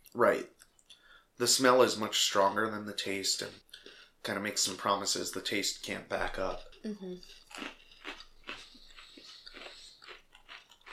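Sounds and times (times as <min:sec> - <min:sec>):
speech: 0:00.2 - 0:00.5, 0:01.4 - 0:07.8
crunching and chewing an Oreo cookie: 0:06.2 - 0:10.9.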